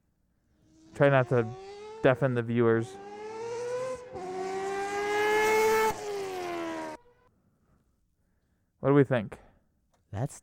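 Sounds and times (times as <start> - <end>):
Mazda endurance race car engine revving: 0.6 - 7.2
speech: 1.0 - 3.1, 8.8 - 9.4, 10.1 - 10.4.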